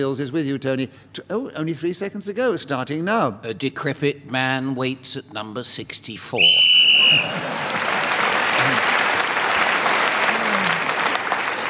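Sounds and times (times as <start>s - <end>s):
speech: 0.0s - 7.9s
referee's whistle blast ending the round: 6.4s - 7.3s
loud sustained applause from a large audience: 6.8s - 11.6s.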